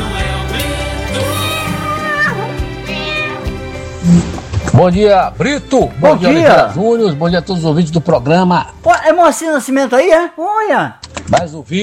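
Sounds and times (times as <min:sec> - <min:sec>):
cat meowing in a radio station jingle: 0:01.2 - 0:03.6
speech: 0:04.1 - 0:11.8.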